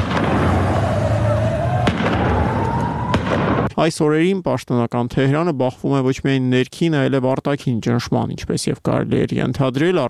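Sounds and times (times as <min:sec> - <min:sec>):
roar of protesters crowd noise: 0:00.0 - 0:03.2
voices: 0:00.0 - 0:03.2
gunfire from security forces on the roof of a residential building: 0:00.0 - 0:03.7
speech: 0:03.8 - 0:10.0.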